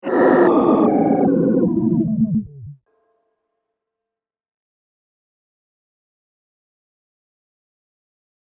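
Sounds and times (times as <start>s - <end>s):
science fiction robot powering down: 0.0s - 2.8s.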